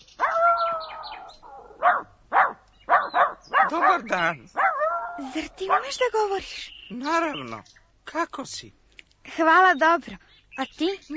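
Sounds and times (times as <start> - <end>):
dog barking: 0.2 - 6.1
speech: 3.7 - 4.6, 5.2 - 8.8, 9.4 - 11.1.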